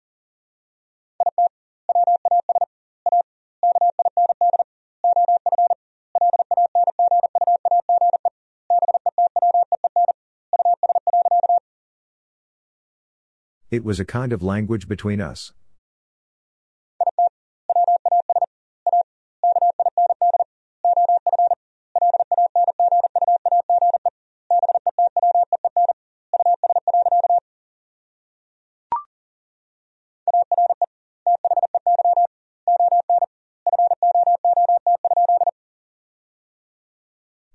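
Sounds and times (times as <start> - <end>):
single-pitch Morse code tone sending English sentences: 1.2 - 11.6, 17.0 - 27.4, 30.3 - 35.5
speech: 13.7 - 15.6.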